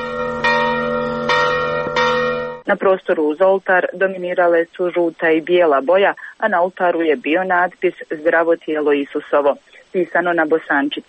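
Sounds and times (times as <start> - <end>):
heavy church bell over 300 kilograms ringing at the start of a Mass: 0.0 - 2.7
speech: 2.7 - 11.0.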